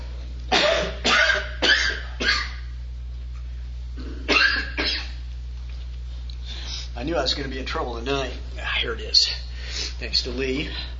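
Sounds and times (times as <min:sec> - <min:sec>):
harsh coughing fit: 0:00.5 - 0:02.7, 0:04.0 - 0:05.2
speech: 0:07.0 - 0:10.9.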